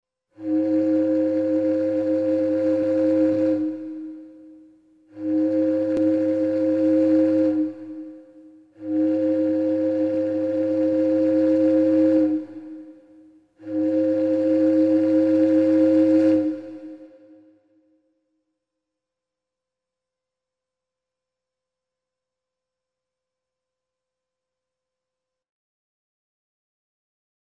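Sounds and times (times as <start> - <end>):
ship horn: 0.3 - 18.0.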